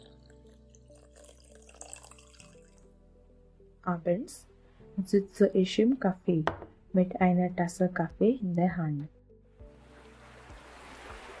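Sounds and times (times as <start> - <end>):
speech: 3.9 - 9.2
ocean waves: 9.8 - 11.3.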